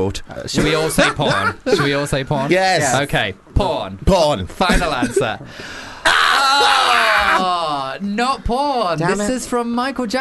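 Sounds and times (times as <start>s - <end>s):
speech: 0.0s - 10.1s
laughter: 0.5s - 2.8s, 4.6s - 7.8s
man breathing heavily in the woods: 5.4s - 6.1s.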